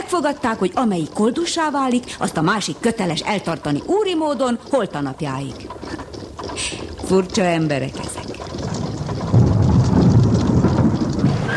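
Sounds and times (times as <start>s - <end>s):
speech: 0.1s - 6.0s, 6.6s - 8.2s
deep thunder rolling in an approaching thunderstorm: 7.4s - 11.5s
heavy rain: 8.6s - 11.5s.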